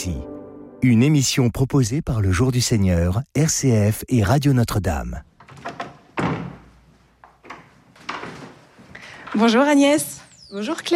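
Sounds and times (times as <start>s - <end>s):
speech: 0.0s - 5.3s, 9.4s - 10.9s
light knocks and clunks of handling: 5.4s - 9.4s
door swinging shut as visitors enter a magazine's offices in a newly renovated building: 5.5s - 6.7s.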